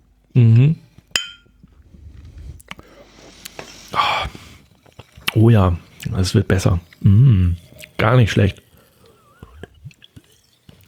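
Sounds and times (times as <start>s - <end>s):
speech: 0.4s - 0.8s, 5.4s - 8.6s
glasses of a sparkling lemon drink clinking in a toast: 1.2s - 1.6s.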